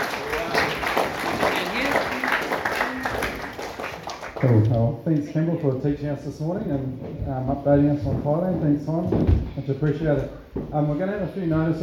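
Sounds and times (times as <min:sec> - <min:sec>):
audience applauding: 0:00.0 - 0:04.8
speech: 0:04.4 - 0:11.8.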